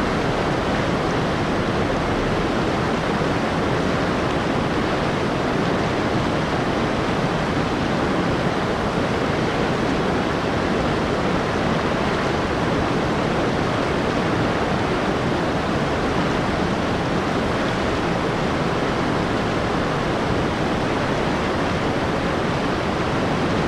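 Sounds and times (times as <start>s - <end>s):
fast-flowing Kawarau River rushing in New Zealand: 0.0s - 23.6s.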